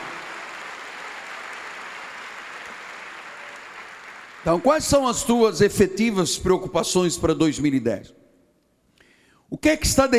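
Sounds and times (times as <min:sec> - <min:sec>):
church audience applauding during a sermon: 0:00.0 - 0:04.7
speech: 0:04.4 - 0:08.2, 0:09.6 - 0:10.1.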